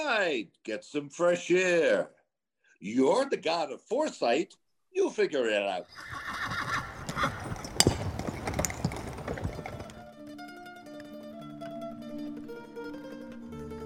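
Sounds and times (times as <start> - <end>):
speech: 0.2 - 2.2, 2.8 - 6.6
horse whinnying: 5.8 - 10.2
horse hooves clip-clopping as a horse-drawn chariot sets off: 6.0 - 13.6
chariot harness noise: 7.0 - 10.1.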